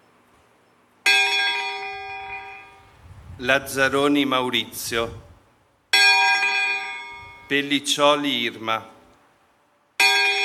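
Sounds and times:
church bell in Nembro striking: 0:01.0 - 0:02.9, 0:05.9 - 0:07.6, 0:10.0 - 0:10.4
speech: 0:03.4 - 0:05.3, 0:07.5 - 0:09.0.

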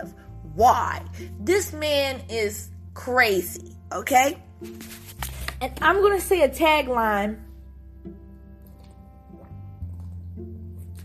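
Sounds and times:
speech: 0:00.0 - 0:08.2
person drinking water: 0:08.6 - 0:11.0.

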